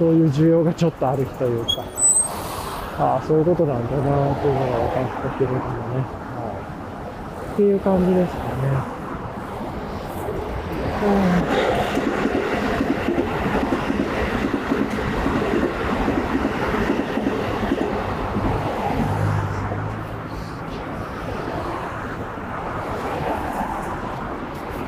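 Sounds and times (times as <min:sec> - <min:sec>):
speech: 0:00.0 - 0:02.0, 0:03.0 - 0:06.2, 0:07.6 - 0:09.0, 0:11.0 - 0:11.8
train rumbling past on the tracks: 0:08.2 - 0:24.4.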